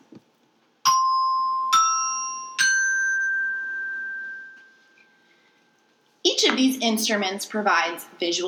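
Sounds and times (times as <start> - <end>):
colored resonator bells being struck: 0.9 - 5.6
speech: 6.4 - 8.4.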